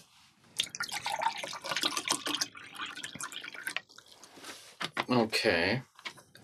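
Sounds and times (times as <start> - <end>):
water pouring into a glass: 0.6 - 4.3
speech: 5.1 - 5.9.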